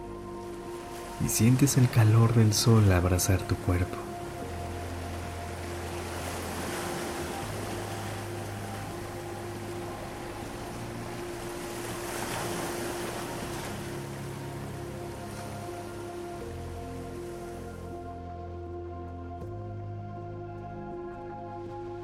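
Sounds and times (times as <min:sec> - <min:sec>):
calm sustained musical drone: 0:00.0 - 0:22.0
ocean waves washing onto a sandy beach: 0:00.7 - 0:16.4
speech: 0:01.2 - 0:04.1.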